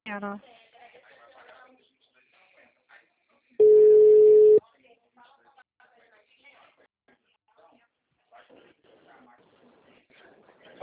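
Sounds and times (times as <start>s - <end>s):
telephone line busy tone beep after a dropped call: 3.6s - 4.6s.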